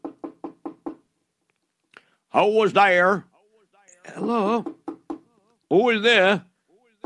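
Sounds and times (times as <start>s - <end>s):
firm knocks on a door: 0.0s - 1.0s, 4.4s - 5.3s
speech: 2.3s - 3.3s, 4.2s - 4.8s, 5.7s - 6.5s.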